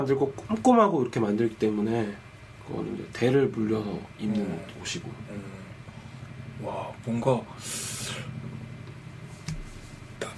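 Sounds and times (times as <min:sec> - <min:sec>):
speech: 0:00.0 - 0:05.6, 0:06.6 - 0:08.3
helicopter passing overhead at a distance: 0:04.7 - 0:09.2
airy hiss: 0:06.6 - 0:08.4.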